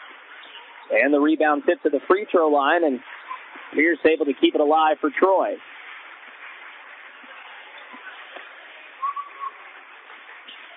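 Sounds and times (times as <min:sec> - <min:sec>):
crowd noise at a basketball game: 0:00.0 - 0:10.7
speech: 0:00.9 - 0:05.7
referee whistle blasts for a foul in a basketball game: 0:09.0 - 0:09.6.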